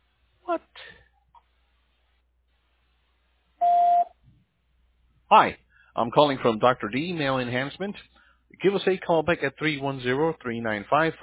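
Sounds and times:
speech: 0:00.5 - 0:01.0, 0:05.3 - 0:11.2
electronic phone beep: 0:03.6 - 0:04.1.

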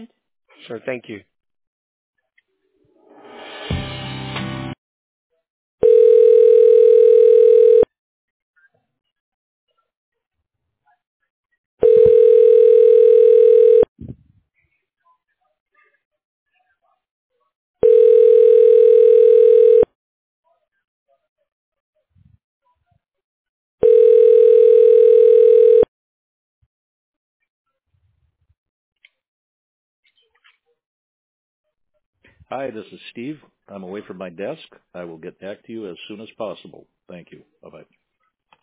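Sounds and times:
speech: 0:00.0 - 0:01.3, 0:32.5 - 0:38.0
telephone ringback tone while call is transferred to voicemail: 0:05.8 - 0:07.9, 0:11.8 - 0:13.9, 0:17.8 - 0:19.9, 0:23.8 - 0:25.9.

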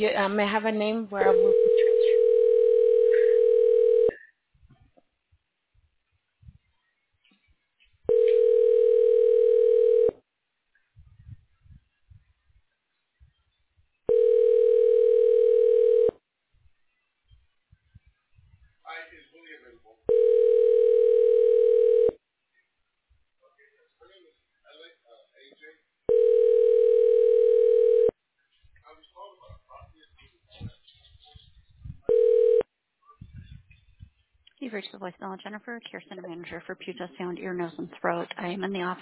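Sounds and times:
speech: 0:00.0 - 0:02.1, 0:35.0 - 0:39.0
telephone ringback tone while a call is transferred: 0:01.2 - 0:04.2, 0:08.1 - 0:10.1, 0:14.1 - 0:16.1, 0:20.1 - 0:22.2, 0:26.1 - 0:28.1, 0:32.1 - 0:32.6.

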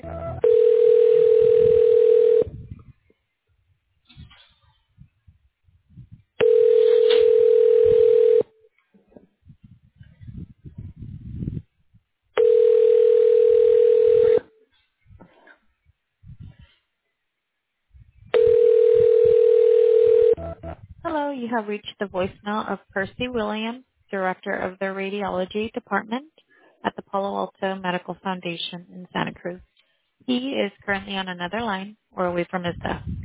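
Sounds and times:
telephone ringing tone while a call is transferred: 0:00.0 - 0:02.6, 0:06.4 - 0:08.5, 0:12.4 - 0:14.5, 0:18.4 - 0:20.8
speech: 0:21.6 - 0:26.4, 0:27.1 - 0:29.7, 0:30.3 - 0:33.1.

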